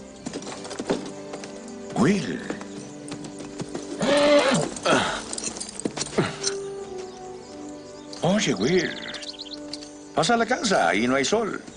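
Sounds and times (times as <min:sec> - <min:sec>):
speech: 0:02.0 - 0:02.6, 0:08.4 - 0:09.0, 0:10.2 - 0:11.7
horse whinnying: 0:03.7 - 0:06.6.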